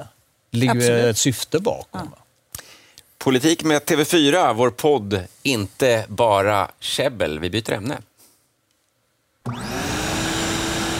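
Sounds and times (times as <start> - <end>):
speech: 0.0 - 2.2, 3.2 - 8.1, 9.4 - 9.7
vacuum cleaner running: 9.5 - 10.9.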